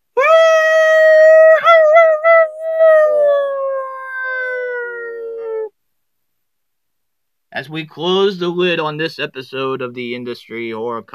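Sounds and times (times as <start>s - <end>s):
single wolf howling: 0.2s - 5.7s
speech: 7.6s - 11.1s.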